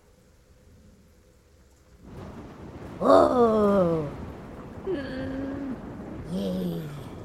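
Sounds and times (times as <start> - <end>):
steady rainfall: 0.0 - 7.2
thunder rumbling: 2.0 - 7.2.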